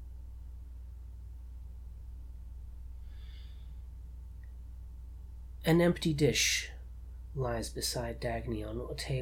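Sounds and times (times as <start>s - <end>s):
sleeping person breathing: 3.0s - 4.0s
speech: 5.6s - 6.7s, 7.4s - 9.2s.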